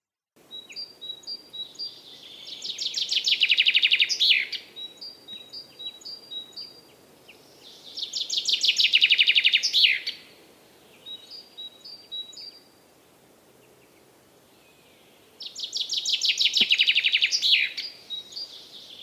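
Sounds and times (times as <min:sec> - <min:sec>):
chaffinch song imitating a great spotted woodpecker: 0:00.4 - 0:12.8, 0:13.6 - 0:19.0.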